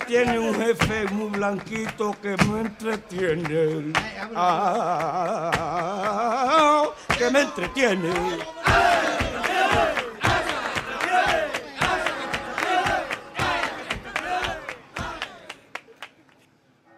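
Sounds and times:
flamenco rhythmic handclaps: 0:00.0 - 0:16.4
speech: 0:00.1 - 0:09.2
crowd shouting flamenco jaleos: 0:07.2 - 0:15.6.

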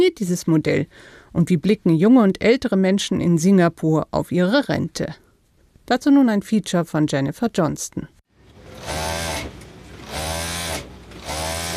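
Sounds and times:
speech: 0:00.0 - 0:05.2, 0:05.9 - 0:08.2
sewing machine running with motor whirring: 0:08.6 - 0:11.7.

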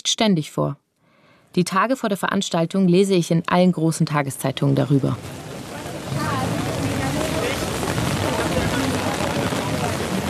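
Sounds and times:
speech: 0:00.1 - 0:00.8, 0:01.5 - 0:05.5
loud roar of strong wind and rain: 0:04.4 - 0:10.2
faint indistinct voices: 0:05.6 - 0:10.2.

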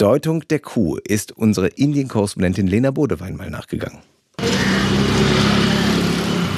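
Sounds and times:
speech: 0:00.0 - 0:05.4
traffic engine drone in a city centre side street in Delhi: 0:04.4 - 0:06.5.

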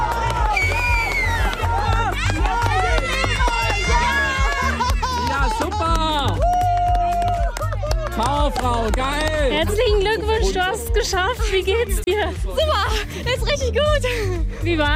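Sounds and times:
runners racing uphill in pairs: 0:00.0 - 0:10.0
loud busy crowd cheering and shouting: 0:00.0 - 0:11.1
laughter: 0:01.2 - 0:06.2, 0:09.3 - 0:14.2
speech: 0:08.8 - 0:14.9.

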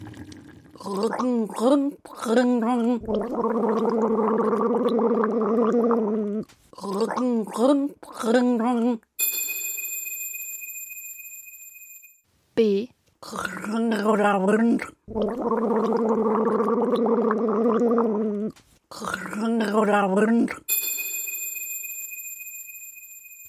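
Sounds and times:
person gargling water: 0:00.0 - 0:08.5, 0:13.2 - 0:20.7
speech: 0:00.8 - 0:09.1, 0:12.6 - 0:20.7
bright ringing bell: 0:09.2 - 0:12.2, 0:20.7 - 0:23.4.

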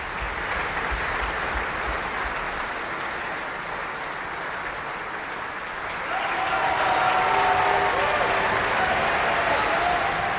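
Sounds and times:
opera house audience applauding: 0:00.0 - 0:10.3.

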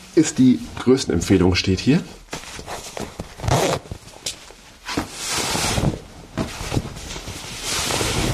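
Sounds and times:
speech: 0:00.2 - 0:02.2
fabric rustling as someone undresses: 0:02.3 - 0:08.3
sharp zipper pulls: 0:03.4 - 0:03.9.

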